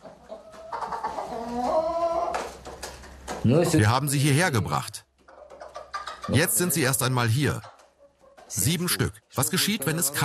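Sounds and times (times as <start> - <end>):
chicken squawk: 0.0 - 2.5, 5.3 - 6.4
chickens clucking in a henhouse: 0.0 - 4.0, 5.1 - 10.2
speech: 3.4 - 5.1, 6.3 - 7.7, 8.5 - 10.2.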